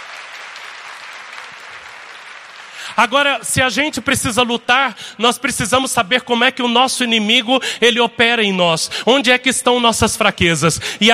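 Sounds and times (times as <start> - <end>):
church congregation applauding loudly after a call from the pulpit: 0.0 - 3.9
speech: 2.9 - 11.1.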